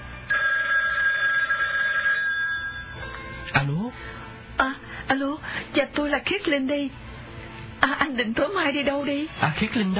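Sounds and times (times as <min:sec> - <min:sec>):
electronic telephone ring tone as a call is placed: 0:00.3 - 0:03.1
speech: 0:03.5 - 0:07.0, 0:07.8 - 0:09.9.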